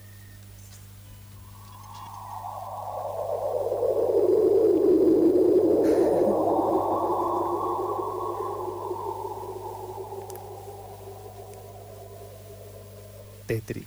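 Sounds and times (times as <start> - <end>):
steady low hum: 0.0 - 13.6
deep eerie electronic tone from black hole radiation sonification: 1.3 - 13.6
brief click: 10.2 - 10.5.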